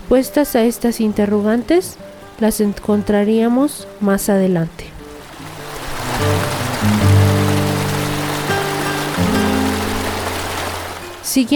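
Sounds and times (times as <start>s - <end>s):
speech: 0.1s - 4.9s, 11.3s - 11.5s
river water falling into a large deep hollow: 5.2s - 11.3s.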